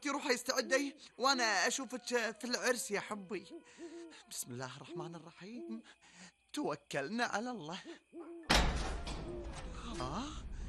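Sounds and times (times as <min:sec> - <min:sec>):
speech: 0:00.3 - 0:09.0, 0:09.9 - 0:10.5
heavy castle door thud: 0:08.5 - 0:10.6.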